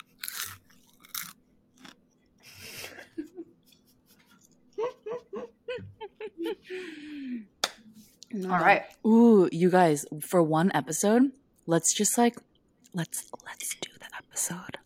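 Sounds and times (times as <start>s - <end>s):
popcorn crunched and chewed from a small ceramic dish: 0.0s - 2.5s
laughter: 2.6s - 7.2s
speech: 8.4s - 13.8s, 14.4s - 14.8s.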